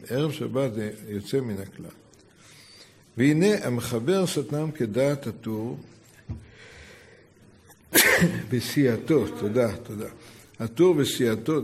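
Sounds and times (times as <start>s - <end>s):
speech: 0.1s - 2.0s, 3.2s - 6.4s, 7.9s - 11.6s
person sneezing during a religious lesson: 7.9s - 8.5s.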